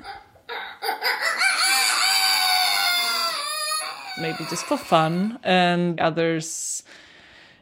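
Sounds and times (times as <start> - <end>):
man's voice imitating a rooster crowing: 1.2 - 5.0
speech: 4.2 - 7.1.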